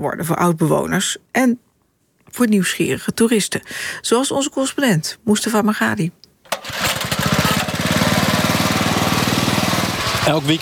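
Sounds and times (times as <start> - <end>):
speech: 0.0 - 1.7, 2.3 - 6.8, 10.3 - 10.6
small bamboo raft motor starting and chugging: 6.6 - 10.6.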